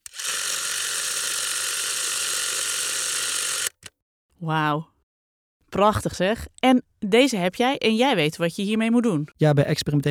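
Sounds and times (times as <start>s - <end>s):
1930s spring-wound 9.5 mm film camera whirring: 0.0s - 3.9s
speech: 4.4s - 4.9s, 5.7s - 10.0s.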